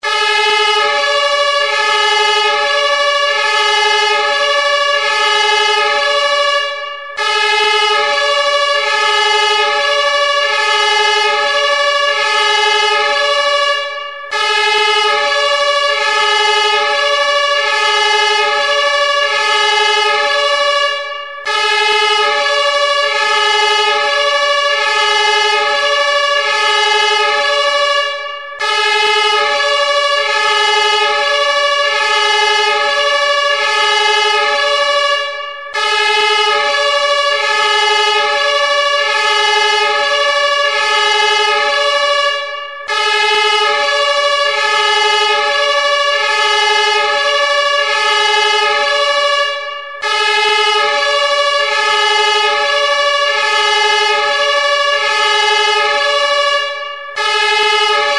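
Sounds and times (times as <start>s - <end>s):
fire engine two-tone siren: 0.0s - 58.1s.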